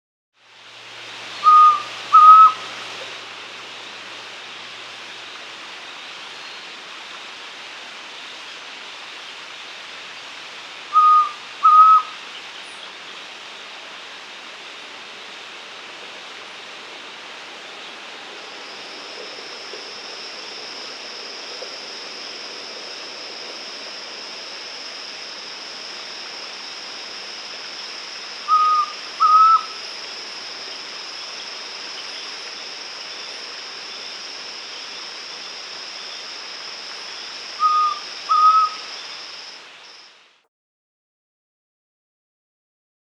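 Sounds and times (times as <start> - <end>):
Andean White-Throated Antpitta Grallaria albigula of South America: 1.4 - 2.7, 10.9 - 12.9, 28.4 - 30.0, 37.5 - 39.2.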